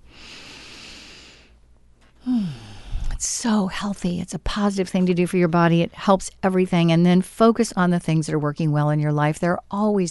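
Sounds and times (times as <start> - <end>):
deep breath: 0.0 - 1.6, 2.2 - 3.2
speech: 3.2 - 10.0.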